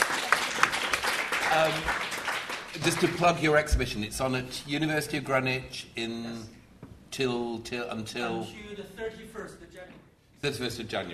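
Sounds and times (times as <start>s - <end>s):
audience applause: 0.0s - 3.6s
speech: 1.5s - 2.1s, 2.8s - 6.6s, 7.2s - 11.1s.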